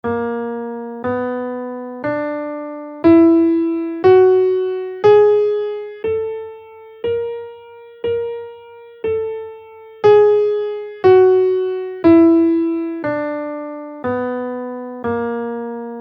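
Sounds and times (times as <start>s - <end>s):
guitar playing a major scale in B flat: 3.0s - 14.8s.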